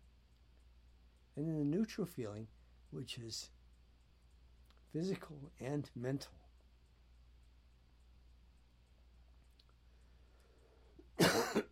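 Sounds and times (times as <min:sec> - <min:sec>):
speech: 0:01.4 - 0:03.6, 0:04.9 - 0:06.4
single harsh cough: 0:11.2 - 0:11.7.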